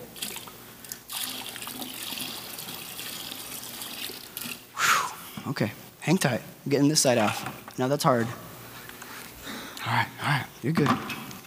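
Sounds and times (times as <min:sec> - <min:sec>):
water pouring out in a steady rushing stream: 0:00.0 - 0:04.7
speech: 0:05.4 - 0:08.4, 0:09.9 - 0:11.1.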